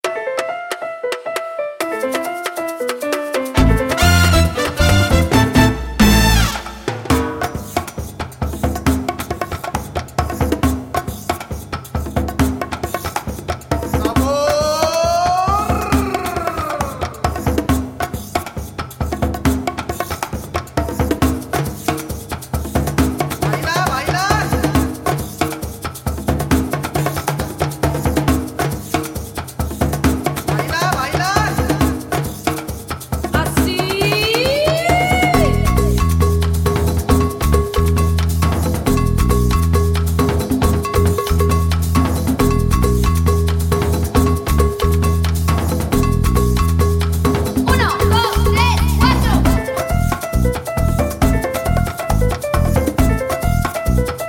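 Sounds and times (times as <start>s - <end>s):
Latin merengue music: 0.0s - 54.2s.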